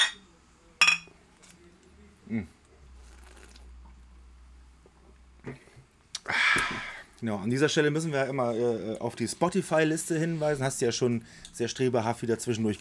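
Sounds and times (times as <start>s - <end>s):
beer glasses clinking in a toast: 0.0s - 0.2s, 0.8s - 1.1s
low hum: 0.0s - 12.7s
speech: 2.3s - 2.6s, 7.2s - 12.7s.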